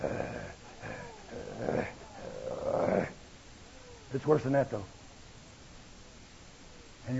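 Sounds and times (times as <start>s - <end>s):
low guttural growl: 0.0s - 3.2s
speech: 4.1s - 5.0s.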